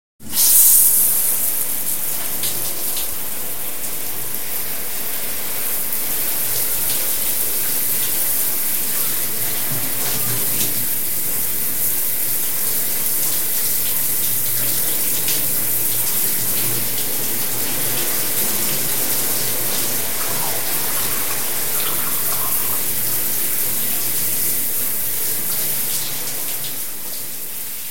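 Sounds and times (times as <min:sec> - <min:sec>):
shower running: 0:00.2 - 0:27.8.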